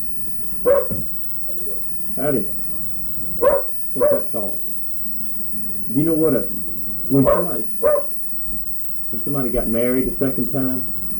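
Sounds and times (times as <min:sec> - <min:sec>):
dog barking: 0:00.6 - 0:04.6, 0:07.1 - 0:08.2
speech: 0:01.8 - 0:02.6, 0:06.0 - 0:07.9, 0:09.1 - 0:11.0.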